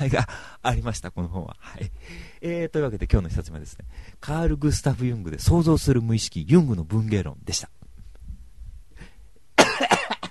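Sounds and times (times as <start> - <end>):
speech: 0.0 - 7.8
faint low rumble: 0.8 - 6.1, 7.0 - 9.4
person coughing: 9.6 - 10.2.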